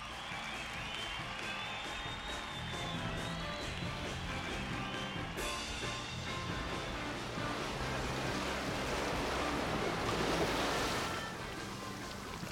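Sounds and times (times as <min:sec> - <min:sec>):
faint tonal music: 0:00.2 - 0:12.5
steady rushing water like waves or surf: 0:02.8 - 0:12.5.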